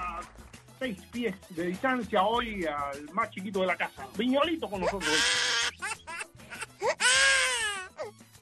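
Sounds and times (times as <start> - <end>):
speech: 0.8 - 5.5
baby crying: 4.7 - 8.2.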